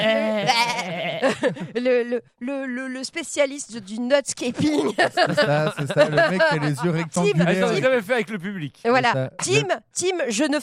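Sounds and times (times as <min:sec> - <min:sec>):
goat bleating: 0:00.0 - 0:01.2
laughter: 0:00.0 - 0:01.8, 0:04.6 - 0:07.9
speech: 0:01.2 - 0:10.6.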